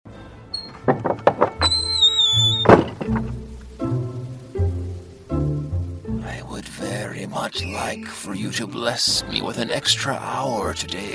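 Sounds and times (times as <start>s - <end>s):
door opening with wooden knocks and thunks: 0.6s - 1.8s, 2.6s - 3.4s
rain falling outside: 2.3s - 10.6s
speech: 7.3s - 11.1s.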